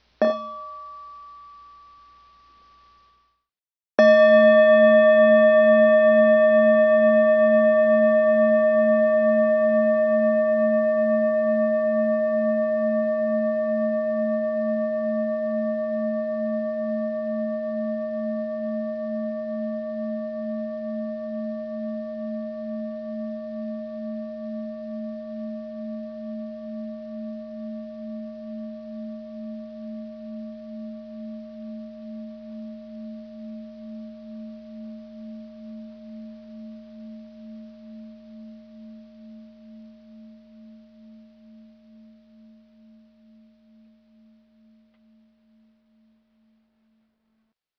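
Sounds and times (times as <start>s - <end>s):
meditation timer bell: 0.2s - 3.4s, 4.0s - 46.0s.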